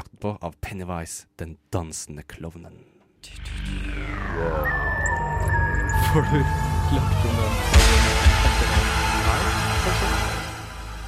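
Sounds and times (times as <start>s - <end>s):
speech: 0.2s - 4.9s, 6.1s - 8.2s
brooding atmospheric music with sustained low drones: 3.3s - 11.0s.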